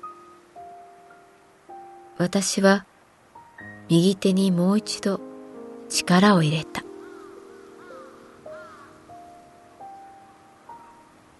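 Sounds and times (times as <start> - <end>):
faint hiss: 0.0 - 11.3
speech: 2.2 - 2.9, 3.9 - 5.3, 5.9 - 6.8
crow cawing at night: 6.9 - 9.5.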